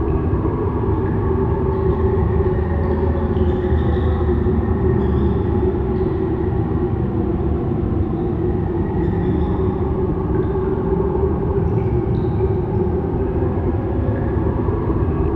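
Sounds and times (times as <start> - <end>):
cave ambience: 0.0 - 15.3.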